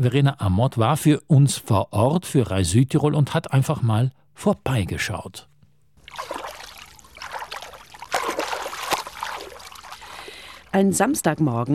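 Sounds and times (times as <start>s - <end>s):
speech: 0.0s - 5.5s, 6.2s - 6.4s, 10.7s - 11.7s
lake water lapping during dragon boat training: 6.0s - 11.1s.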